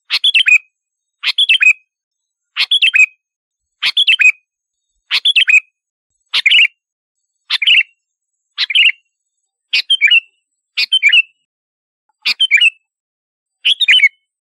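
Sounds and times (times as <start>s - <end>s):
sooty-headed bulbul singing: 0.0s - 1.9s, 2.5s - 3.2s, 3.8s - 6.8s, 7.4s - 11.5s, 12.1s - 12.9s, 13.5s - 14.4s.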